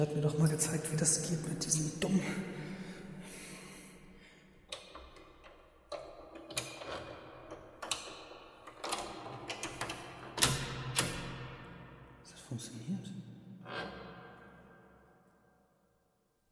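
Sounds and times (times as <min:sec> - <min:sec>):
speech: 0:00.0 - 0:02.6
metallic clicks and scrapes of a door lock being worked open: 0:04.7 - 0:12.0.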